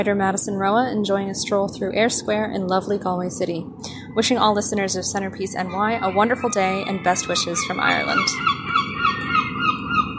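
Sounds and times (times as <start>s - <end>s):
speech: 0.0s - 8.9s
busy outdoor noise at a seaport: 0.0s - 10.1s
seagulls calling at a seaport in Galway Ireland: 3.9s - 10.1s.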